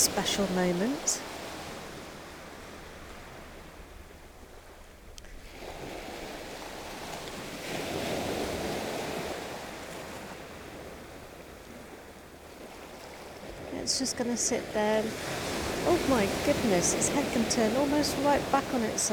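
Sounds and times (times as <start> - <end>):
speech: 0.0 - 1.3, 14.0 - 19.1
ocean surf washing onto a shore: 0.0 - 19.1.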